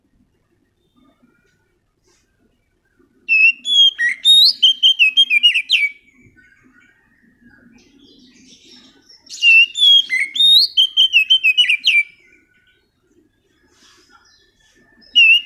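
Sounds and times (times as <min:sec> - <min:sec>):
Oriental magpie-robin soft low chatter: 0:00.0 - 0:15.4
Oriental magpie-robin singing whistled and trilled notes: 0:03.3 - 0:13.0, 0:13.6 - 0:15.4.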